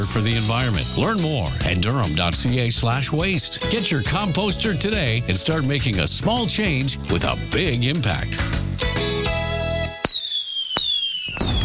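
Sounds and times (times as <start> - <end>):
speech: 0.0 - 8.7
fireworks dense crackling burst: 9.9 - 11.6
loud whistling tone of fireworks falling in pitch: 9.9 - 11.6.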